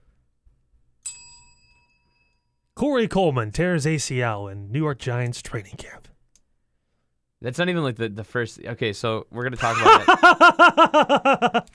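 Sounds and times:
bright bell ding: 1.0 - 2.7
speech: 2.8 - 6.1, 7.4 - 11.7
laughter: 9.6 - 11.7.

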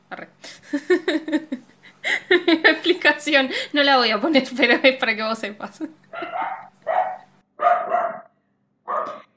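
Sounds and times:
laughter: 0.6 - 3.1, 5.8 - 6.7
speech: 3.2 - 6.0
dogs barking: 6.1 - 8.3, 8.9 - 9.3.

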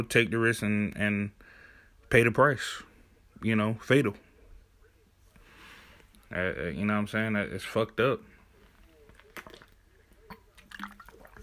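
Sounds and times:
speech: 0.0 - 1.5, 2.1 - 4.2, 6.3 - 8.3
person drinking water, swallowing and gulping: 9.4 - 11.4
water sloshing: 10.6 - 11.4.

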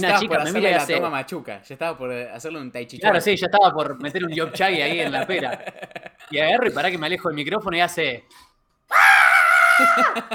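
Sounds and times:
speech: 0.0 - 9.2, 9.8 - 10.3
laughter: 4.2 - 7.0, 9.8 - 10.3
person imitating an excited woman's high-pitched scream: 8.9 - 10.3.

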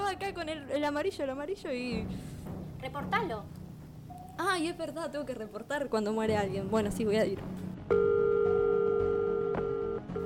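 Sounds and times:
speech: 0.2 - 3.6, 4.4 - 8.1
telephone tone after a cut-off call: 7.9 - 10.2.

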